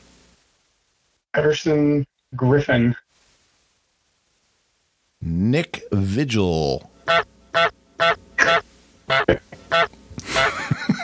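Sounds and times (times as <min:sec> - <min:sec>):
speech: 0:01.4 - 0:03.0, 0:05.2 - 0:08.2
overlapping squawks: 0:07.0 - 0:10.5
goose honking: 0:07.1 - 0:10.5
laughter: 0:10.2 - 0:11.0.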